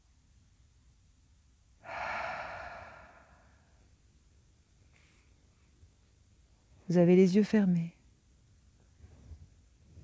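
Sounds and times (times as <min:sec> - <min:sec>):
deep belly breathing: 0:01.8 - 0:03.8
speech: 0:06.9 - 0:08.0.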